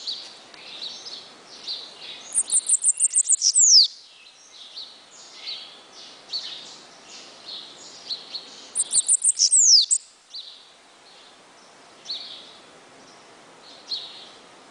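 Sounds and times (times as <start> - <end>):
quiet bird chirps: 0.0 - 14.4
bananaquit singing high ticks with falling note: 2.1 - 4.0, 8.7 - 10.1.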